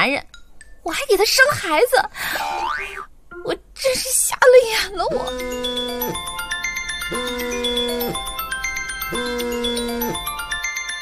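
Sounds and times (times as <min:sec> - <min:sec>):
speech: 0:00.0 - 0:06.3
phone ringing with an incoming call, bright electronic ringtone melody: 0:05.1 - 0:11.0.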